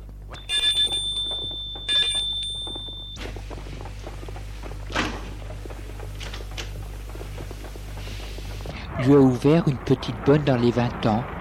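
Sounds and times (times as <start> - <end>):
doorbell ringing at a white villa: 0.3 - 3.2
speech: 9.0 - 11.3.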